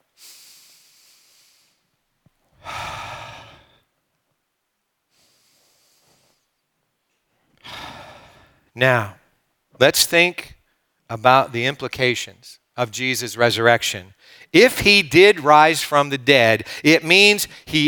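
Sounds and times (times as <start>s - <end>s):
audience taking deep breaths together: 0.1s - 3.9s, 5.1s - 6.6s, 7.6s - 8.7s, 14.2s - 14.5s, 16.6s - 16.8s
speech: 8.8s - 9.2s, 9.8s - 10.5s, 11.1s - 17.8s.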